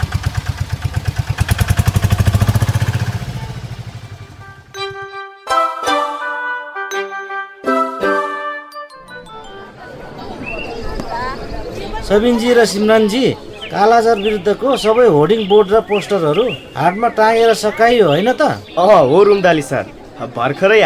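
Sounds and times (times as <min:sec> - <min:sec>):
three-wheeler tempo engine starting and chugging: 0:00.0 - 0:04.7
tonal chiming: 0:04.4 - 0:10.8
speech: 0:12.1 - 0:20.8.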